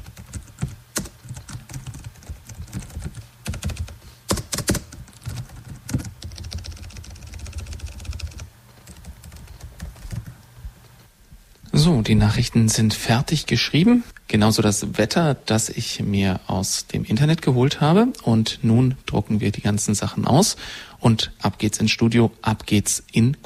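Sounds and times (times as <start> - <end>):
rapid typing on a computer keyboard while news copy is rewritten: 0.0 - 10.3
speech: 12.0 - 23.4.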